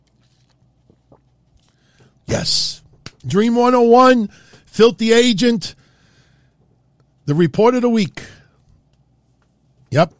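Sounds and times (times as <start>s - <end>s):
person sipping water with wet slurps: 0.0s - 2.2s
low steady hum: 0.0s - 10.1s
speech: 2.3s - 5.8s, 7.3s - 8.3s, 9.9s - 10.1s.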